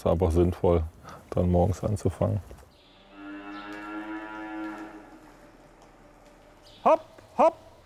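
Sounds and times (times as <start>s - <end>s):
speech: 0.0s - 2.6s, 6.8s - 7.6s
dairy cow mooing on a farm: 2.9s - 5.4s.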